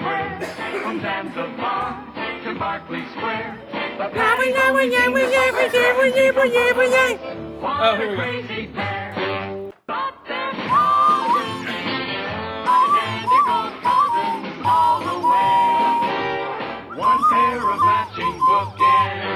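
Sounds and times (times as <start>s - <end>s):
laughter: 0.0s - 2.2s, 2.9s - 9.0s, 10.8s - 16.2s
speech: 0.9s - 8.8s
person whistling a drawn-out melody: 10.6s - 19.3s.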